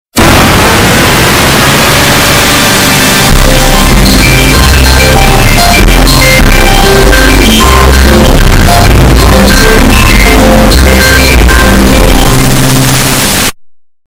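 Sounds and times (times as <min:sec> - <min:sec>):
distorted Windows NT 5.0 startup sound: 0:00.2 - 0:13.6.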